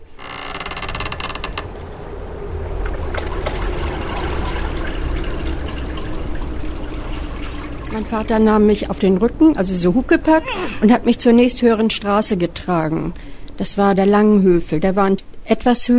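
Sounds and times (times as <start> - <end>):
floodwater pouring in through a house door: 1.2 - 9.1
speech: 8.0 - 15.9.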